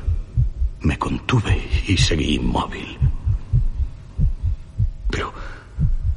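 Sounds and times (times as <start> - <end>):
deep pounding heartbeat: 0.0 - 0.8, 1.5 - 5.2, 5.8 - 6.1
speech: 0.8 - 3.0.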